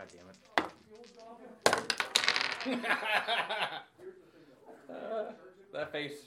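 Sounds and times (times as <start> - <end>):
dice rolling on a hard table: 0.0 - 3.0
laughter: 2.6 - 3.9.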